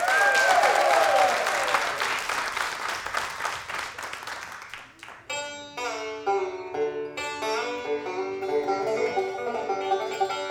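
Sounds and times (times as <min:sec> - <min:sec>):
crowd applauding: 0:00.0 - 0:05.3
plucked string music: 0:05.2 - 0:10.5.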